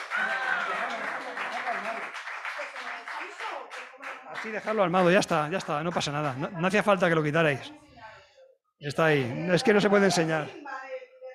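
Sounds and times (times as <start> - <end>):
person cheering: 0.0 - 1.0
audience applause for volunteers who completed a puzzle: 0.0 - 6.4
speech: 4.4 - 7.8, 8.8 - 10.6.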